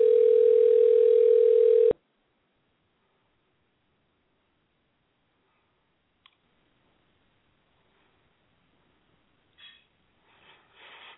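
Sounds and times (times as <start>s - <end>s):
telephone ringback tone while dialing: 0.0s - 2.0s
faint click: 6.2s - 6.4s.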